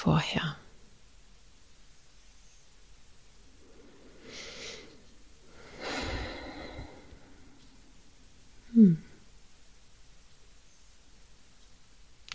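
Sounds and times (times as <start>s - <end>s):
slow soft deep breathing during a guided relaxation exercise: 3.4s - 9.3s.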